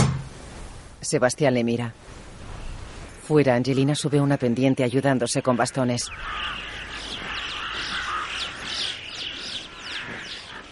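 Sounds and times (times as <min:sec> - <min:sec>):
speech: 0:01.0 - 0:02.0, 0:03.3 - 0:06.7
flock of birds calling over a steep mountain peak: 0:04.9 - 0:10.6.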